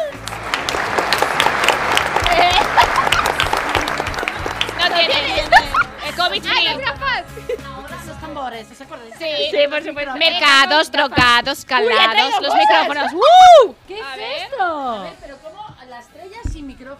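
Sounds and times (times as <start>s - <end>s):
enthusiastic clapping from a small group: 0.0s - 5.9s
laughter: 1.9s - 8.0s
speech: 6.2s - 15.2s.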